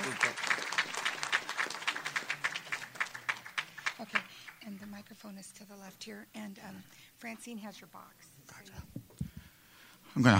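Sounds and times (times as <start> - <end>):
group of people applauding at a Council of the Blind gathering: 0.0 - 5.1
speech: 5.4 - 8.8, 10.2 - 10.3.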